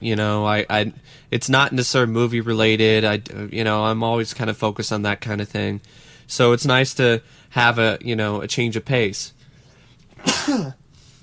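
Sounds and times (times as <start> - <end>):
speech: 0.0 - 9.4, 10.2 - 10.8
person sneezing: 10.2 - 10.8.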